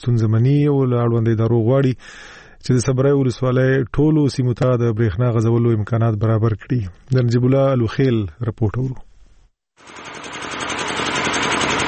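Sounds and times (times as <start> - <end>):
speech: 0.0 - 9.1
old diesel electricity generator running in a bazaar: 9.8 - 11.8.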